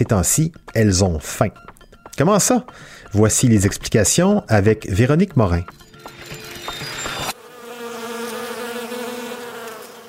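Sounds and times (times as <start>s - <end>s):
speech: 0.0s - 6.2s
clattering rustling noise: 5.6s - 7.4s
wasp buzzing: 6.3s - 10.0s.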